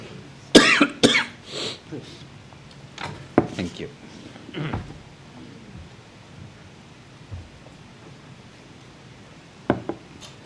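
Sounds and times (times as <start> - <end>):
low noise: 0.0 - 10.4
sharp loud coughs: 0.5 - 1.4, 4.5 - 4.9
speech: 1.9 - 2.3, 3.6 - 4.9
soft throat clearing: 4.5 - 4.9.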